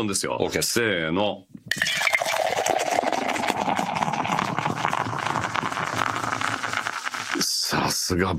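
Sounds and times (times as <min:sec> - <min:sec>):
speech: 0:00.0 - 0:02.0, 0:08.1 - 0:08.3
draft beer being poured into glasses: 0:01.7 - 0:07.4.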